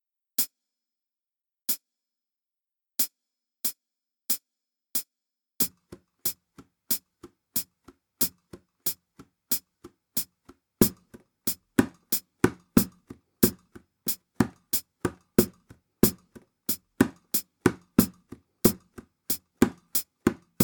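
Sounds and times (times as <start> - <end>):
hand to hand percussion: 7.2 - 20.6.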